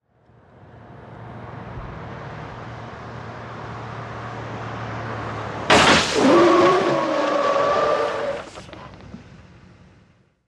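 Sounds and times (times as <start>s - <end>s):
car tyres skidding: 1.2s - 10.2s
car tyre blowouts: 5.7s - 8.7s.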